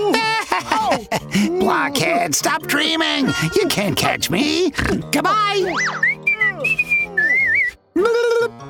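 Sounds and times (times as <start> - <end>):
laughter: 0.0 - 1.5
speech: 0.0 - 6.8
thief whistling a taunting sliding tune: 5.8 - 8.6.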